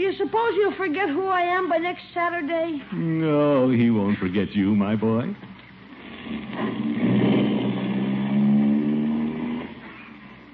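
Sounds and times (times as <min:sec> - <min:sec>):
speech: 0:00.0 - 0:05.5
car engine droning as the vehicle drives: 0:06.4 - 0:10.5.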